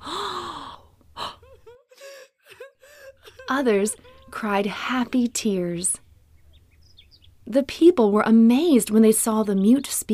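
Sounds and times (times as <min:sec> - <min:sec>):
small group of people gasping in awe: 0:00.0 - 0:03.4
laughter: 0:01.4 - 0:05.3
speech: 0:03.5 - 0:06.0, 0:07.5 - 0:10.1.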